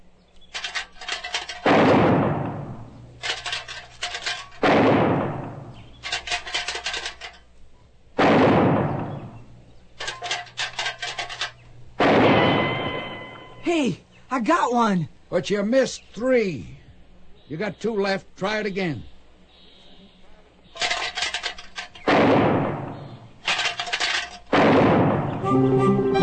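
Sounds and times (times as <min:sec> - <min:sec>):
tin can rattling: 0:00.5 - 0:01.7, 0:03.2 - 0:04.6, 0:05.9 - 0:07.5, 0:10.0 - 0:11.6, 0:20.8 - 0:22.1, 0:23.4 - 0:24.5
gunshots fired at tin cans: 0:01.6 - 0:02.9, 0:04.6 - 0:05.8, 0:08.2 - 0:09.4, 0:12.0 - 0:13.4, 0:22.0 - 0:23.7, 0:24.5 - 0:25.4
speech: 0:13.8 - 0:16.8, 0:17.5 - 0:19.1.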